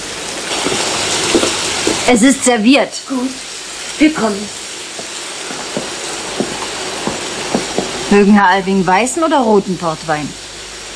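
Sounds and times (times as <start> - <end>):
steady rain with droplet patter: 0.0 - 10.9
speech: 2.1 - 4.6, 8.1 - 10.4.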